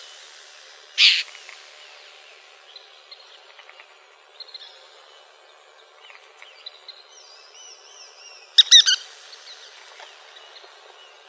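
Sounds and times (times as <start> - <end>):
Western kingbird calls in Arizona: 1.0 - 1.3, 8.6 - 9.0.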